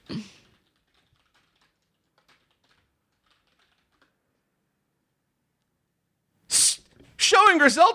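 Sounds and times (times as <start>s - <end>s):
typing on a computer keyboard: 0.1s - 4.8s
speech: 7.5s - 7.9s.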